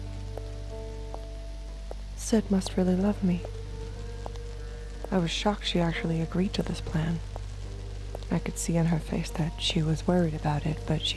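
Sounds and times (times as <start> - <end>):
low constant hum: 0.0 - 11.1
rain on city street pavement at night: 0.0 - 11.1
water drips splashing: 0.0 - 11.1
speech: 2.3 - 3.6, 5.1 - 7.3, 8.3 - 11.1.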